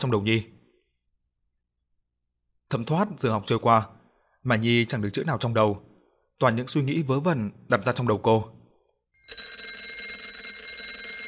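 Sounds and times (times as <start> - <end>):
speech: 0.0 - 0.6, 2.7 - 8.6
school bell ringing at the end of class: 9.2 - 11.2.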